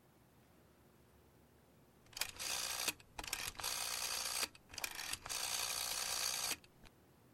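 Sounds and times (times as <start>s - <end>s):
mechanical telephone dial whirring and clicking while a call is dialed: 2.1s - 6.9s.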